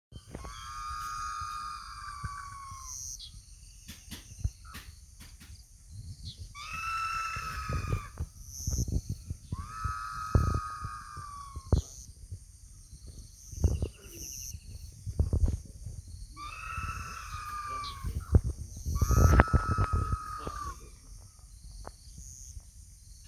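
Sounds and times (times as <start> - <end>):
White-shouldered ibis Pseudibis davisoni: 0.2 - 5.6, 6.3 - 12.0, 16.4 - 21.0.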